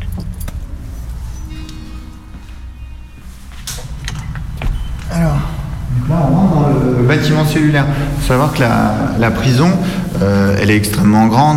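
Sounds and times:
keys jangling and clinking against metal: 0.0s - 0.7s
heavy prison door being unlocked and swung open: 0.0s - 10.4s
low rumble of noise: 0.0s - 11.5s
speech: 7.0s - 11.5s.

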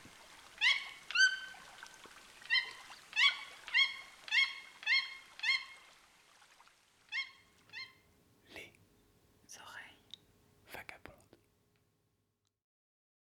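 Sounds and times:
toucans singing in the Amazon rainforest flooded forest of Petit Saut lake: 0.5s - 1.7s, 2.4s - 5.8s, 7.1s - 8.0s.

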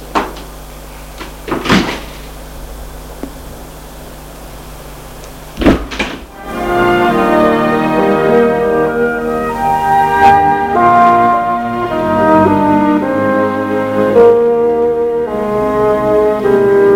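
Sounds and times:
steady dense humming tone: 2.2s - 16.9s
wooden door clunks and knocks: 5.6s - 6.3s.

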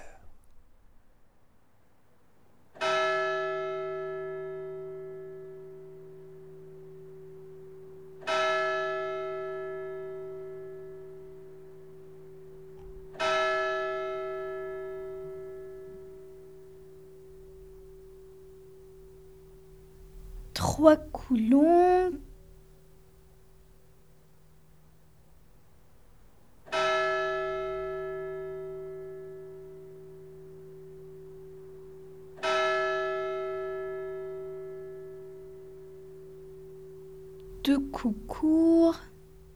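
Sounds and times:
village church bell tolling: 2.8s - 20.4s, 26.7s - 37.4s
speech: 20.8s - 22.2s, 38.0s - 38.7s.

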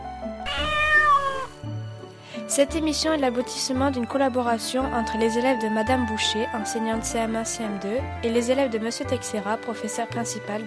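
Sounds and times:
cat meowing: 0.4s - 1.6s
speech: 2.5s - 10.6s.

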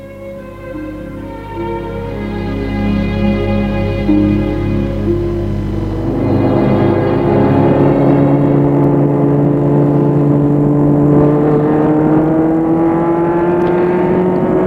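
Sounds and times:
car engine accelerating: 0.0s - 14.6s.

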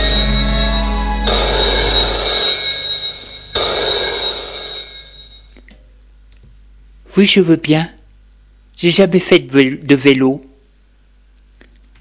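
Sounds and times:
telephone ringing with an incoming call: 0.0s - 5.6s
speech: 7.2s - 8.0s, 8.8s - 10.5s.

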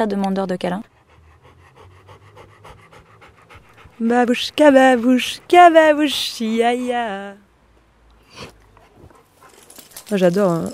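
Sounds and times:
speech: 0.0s - 0.9s, 4.0s - 7.4s, 8.4s - 8.6s, 10.1s - 10.7s
2-3 year old Bernese mountain dog panting: 0.8s - 7.2s, 8.7s - 10.1s.

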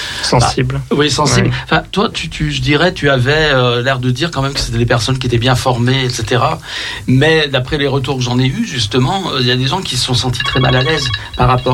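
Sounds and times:
speech: 0.3s - 11.7s
phone alarm ringing with high electronic tones: 10.2s - 11.7s.

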